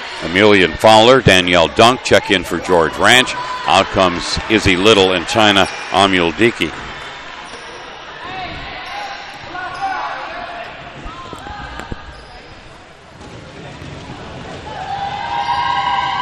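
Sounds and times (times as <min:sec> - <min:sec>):
crowd noise: 0:00.0 - 0:16.1
commentator talking: 0:00.2 - 0:06.7
speech: 0:00.2 - 0:06.9
basketball dribbled at the free throw line: 0:12.9 - 0:15.6.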